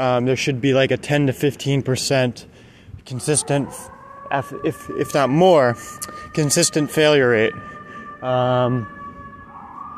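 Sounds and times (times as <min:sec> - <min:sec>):
speech: 0:00.0 - 0:09.0
emergency siren wailing outside: 0:03.1 - 0:09.9.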